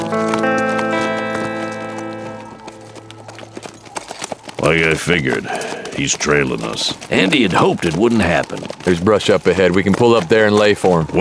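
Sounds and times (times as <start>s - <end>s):
ridden horses' hooves clip-clopping: 0.0s - 11.1s
speech: 4.7s - 11.1s.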